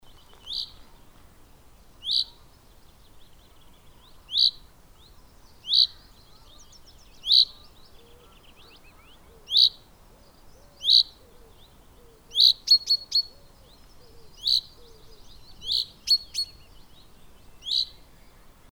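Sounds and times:
faint low bird calls: 0.0 - 18.7
common chaffinch Fringilla coelebs pink calls: 2.0 - 2.5, 4.0 - 4.7, 5.6 - 9.9, 10.5 - 16.8, 17.6 - 18.0.

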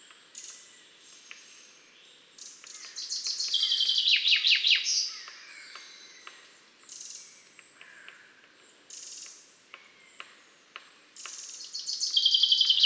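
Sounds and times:
common chaffinch Fringilla coelebs singing: 0.0 - 12.8.

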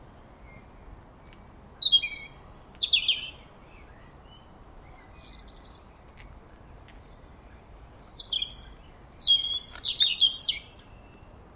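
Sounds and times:
European robin Erithacus rubecula song: 0.0 - 11.5.

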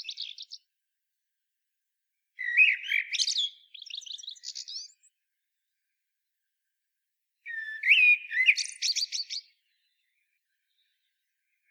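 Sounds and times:
Common blackbird Turdus merula singing: 0.0 - 0.6, 2.4 - 5.1, 7.5 - 10.0.

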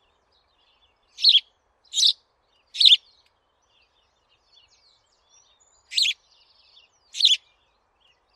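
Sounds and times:
house sparrow Passer domesticus chirps: 0.0 - 8.3.

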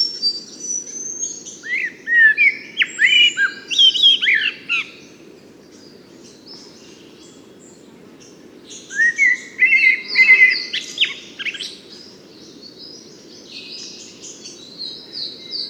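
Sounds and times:
common blackbird singing mellow whistled phrases: 0.0 - 5.0, 8.7 - 15.6.

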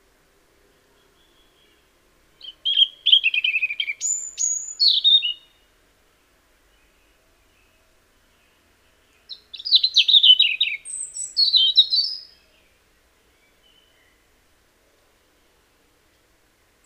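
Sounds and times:
Erithacus rubecula European robin singing tinkling trills and whistles: 0.0 - 16.8.

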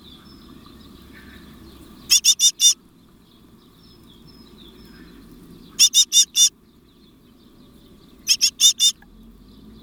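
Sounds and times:
soft background hum: 0.0 - 9.4
great tit Parus major churring scolding call: 2.0 - 2.8, 5.8 - 6.5, 8.3 - 9.0.

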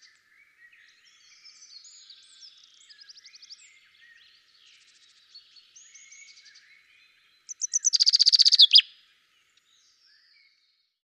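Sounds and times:
common chaffinch Fringilla coelebs singing: 0.0 - 10.3
bird twittering: 7.5 - 8.9.

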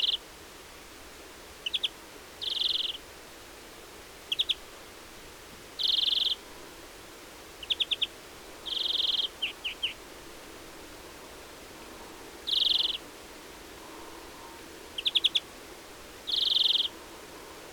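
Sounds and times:
European greenfinch Chloris chloris calling: 0.0 - 0.2, 1.6 - 3.0, 4.3 - 4.6, 5.8 - 6.4, 7.6 - 10.0, 12.4 - 13.0, 15.0 - 15.5, 16.2 - 17.0.

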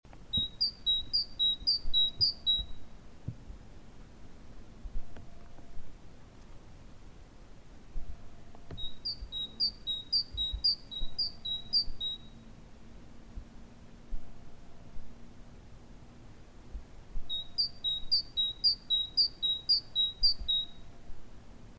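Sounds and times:
low background hum: 0.1 - 21.7
Parus major great tit song in rapid two-note phrases: 0.3 - 2.8, 8.6 - 12.4, 17.3 - 20.8.

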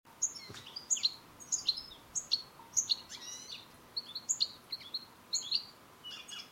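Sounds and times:
European goldfinch Carduelis carduelis calls: 0.2 - 6.4.

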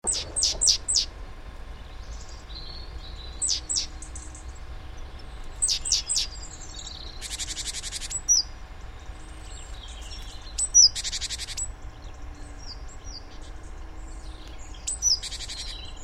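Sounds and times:
Great tit sharp high chirps: 0.0 - 16.0
steady low background noise: 0.0 - 16.0.

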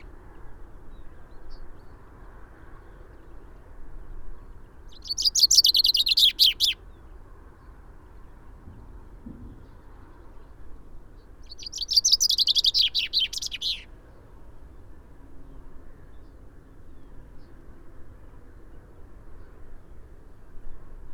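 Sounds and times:
common chaffinch Fringilla coelebs song: 5.0 - 6.8, 11.5 - 13.8.

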